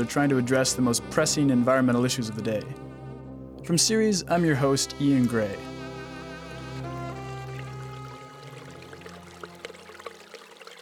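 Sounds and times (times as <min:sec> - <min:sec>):
speech: 0:00.0 - 0:03.0, 0:03.6 - 0:05.8
splashy water drips: 0:06.4 - 0:10.8
water pouring into a container: 0:07.2 - 0:10.8.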